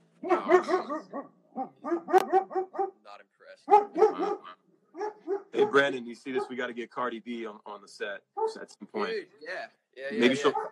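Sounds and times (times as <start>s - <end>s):
puppy barking at a passing truck: 0.2s - 3.0s, 3.6s - 6.7s, 8.4s - 8.7s, 10.2s - 10.7s
speech: 0.5s - 2.1s, 5.8s - 10.7s.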